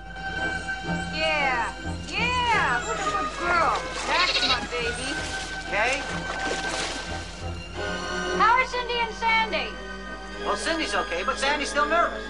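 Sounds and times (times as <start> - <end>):
dolphins whistling and chirping: 0.3 - 5.2
water splashing from dolphins: 1.6 - 9.2
speech: 10.4 - 12.2.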